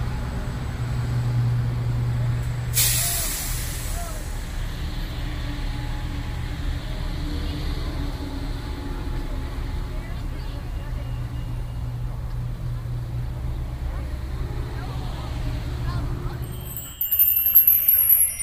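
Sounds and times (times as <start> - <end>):
steady street noise: 0.0 - 18.4
bus air brakes hissing: 2.7 - 4.8
faint voices: 7.4 - 18.4.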